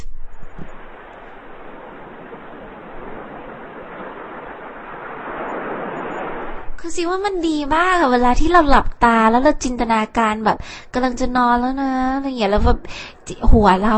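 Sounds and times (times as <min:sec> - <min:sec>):
ocean waves: 0:00.0 - 0:08.4, 0:12.5 - 0:13.9
speech: 0:06.8 - 0:13.9.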